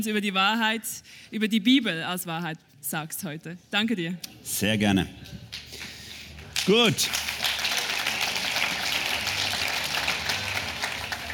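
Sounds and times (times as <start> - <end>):
speech: 0.0 - 5.8, 6.6 - 7.3
crowd applauding: 5.5 - 11.3.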